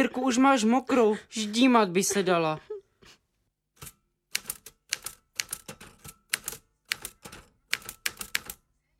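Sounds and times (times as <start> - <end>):
speech: 0.0 - 2.7
typewriter typing: 3.8 - 8.6.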